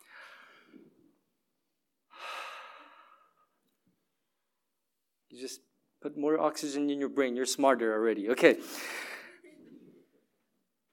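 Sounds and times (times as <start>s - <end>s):
deep breath in: 0.0s - 1.0s, 2.1s - 3.6s
speech: 5.4s - 9.0s.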